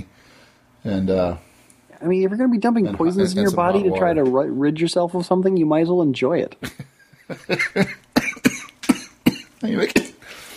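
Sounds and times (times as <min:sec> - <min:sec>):
speech: 0:00.8 - 0:08.0, 0:09.6 - 0:10.1
laughter: 0:03.0 - 0:04.3, 0:06.6 - 0:08.1
person having a coughing fit: 0:07.6 - 0:10.2.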